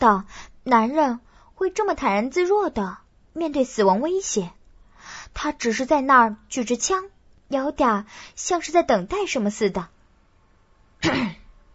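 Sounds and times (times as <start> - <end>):
speech: 0.0 - 4.6, 5.4 - 9.9, 11.0 - 11.4
short rough cough from a doorway: 11.0 - 11.5.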